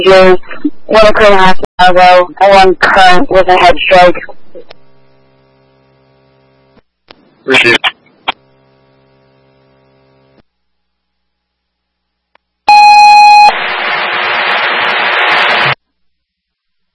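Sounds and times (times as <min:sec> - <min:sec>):
speech: 0:00.0 - 0:04.7, 0:07.4 - 0:08.0
harsh radio static: 0:00.0 - 0:10.4, 0:13.2 - 0:15.8
electronic fire dispatch alert tone for a medical call: 0:12.7 - 0:13.5.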